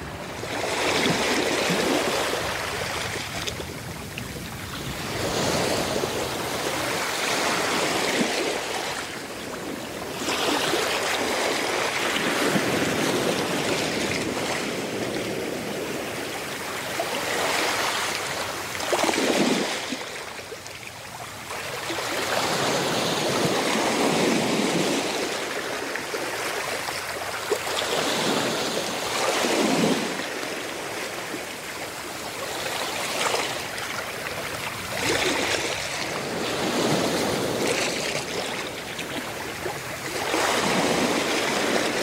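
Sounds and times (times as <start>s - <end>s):
Caribbean ocean water rushing in hammerhead shark habitat: 0.0s - 42.0s.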